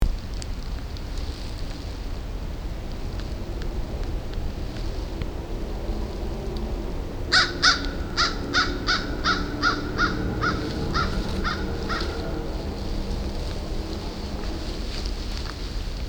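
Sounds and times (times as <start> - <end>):
low background rumble: 0.0 - 16.0
American crow cawing: 7.3 - 14.3.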